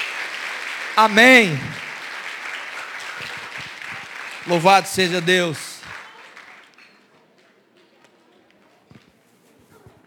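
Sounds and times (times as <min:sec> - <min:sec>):
large crowd applauding: 0:00.0 - 0:07.2
speech: 0:01.0 - 0:01.7, 0:04.5 - 0:05.7.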